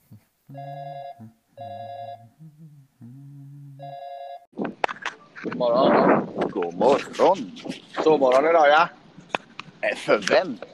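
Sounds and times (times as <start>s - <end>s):
speech: 0.5s - 1.8s, 5.6s - 9.0s, 9.8s - 10.7s
telephone ringing on an outgoing call: 0.6s - 2.2s, 3.8s - 4.4s.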